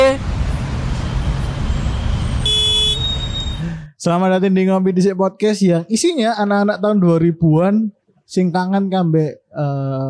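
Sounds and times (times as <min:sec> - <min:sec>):
low roadway rumble: 0:00.0 - 0:04.0
car horn honking in a traffic jam: 0:01.8 - 0:03.6
speech: 0:04.0 - 0:10.0.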